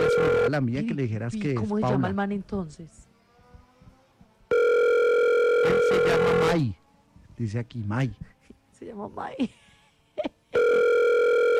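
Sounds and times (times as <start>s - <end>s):
telephone ringback tone of an unanswered outgoing call: 0.0s - 0.6s, 4.5s - 6.5s, 10.6s - 11.5s
speech: 0.5s - 3.1s, 5.6s - 6.8s, 7.4s - 9.6s.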